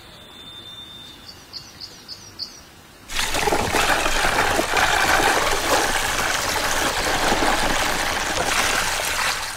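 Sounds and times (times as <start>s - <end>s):
bird chirps: 0.0s - 2.7s
liquid cement pouring down tubes into an underground ant nest: 3.1s - 9.5s.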